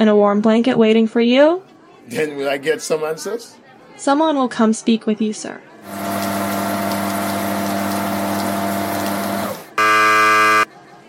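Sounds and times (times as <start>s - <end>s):
speech: 0.0s - 6.2s
high-pressure wash shower spraying water: 5.9s - 9.8s
droning pump hum: 5.9s - 10.7s
loud electronic buzzer: 9.7s - 10.7s.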